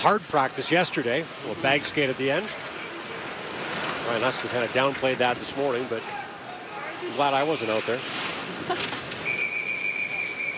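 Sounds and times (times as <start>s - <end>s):
speech: 0.0s - 2.7s, 4.0s - 6.2s, 7.0s - 9.1s
referee's whistle at an ice hockey game: 9.2s - 10.5s.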